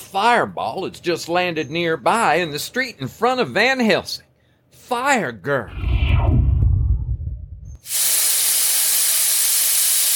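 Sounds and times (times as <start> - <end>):
speech: 0.1 - 4.3, 4.9 - 6.4
deep rumbling tone: 5.7 - 7.8
steam hissing: 7.8 - 10.1.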